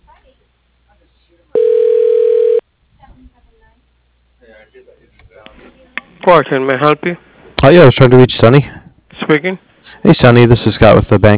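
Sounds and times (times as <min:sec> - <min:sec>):
steady telephone tone on a hotel's automated phone line during call transfer: 0:01.6 - 0:02.6
speech: 0:04.7 - 0:11.3.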